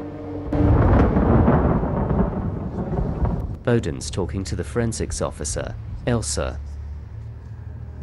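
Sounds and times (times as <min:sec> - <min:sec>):
thunder cracking and rumbling: 0:00.5 - 0:04.2
speech: 0:03.7 - 0:06.8.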